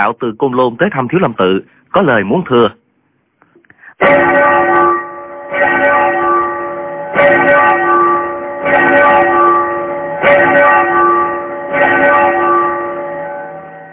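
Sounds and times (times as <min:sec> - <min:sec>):
speech: 0:00.0 - 0:02.8, 0:04.0 - 0:04.4
large temple bells ringing: 0:04.0 - 0:13.9.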